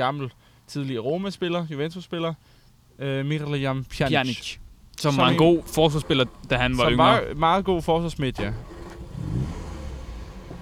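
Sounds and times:
speech: 0.0s - 8.7s
car engine revving: 5.4s - 10.5s.

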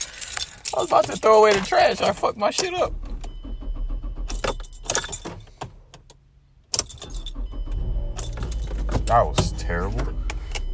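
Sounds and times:
jangling keys: 0.0s - 2.2s, 4.3s - 5.5s, 6.8s - 7.4s, 8.2s - 9.1s
speech: 0.8s - 3.0s, 9.1s - 10.2s
car engine struggling to start: 2.6s - 5.6s, 6.8s - 10.7s.

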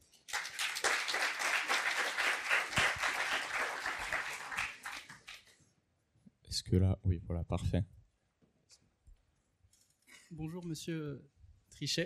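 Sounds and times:
crowd applauding: 0.2s - 5.5s
speech: 6.6s - 8.0s, 10.4s - 12.0s.

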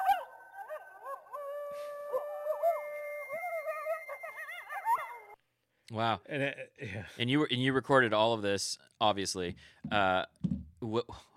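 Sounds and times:
several coyotes howling and yipping at night: 0.0s - 5.4s
speech: 5.9s - 11.3s.

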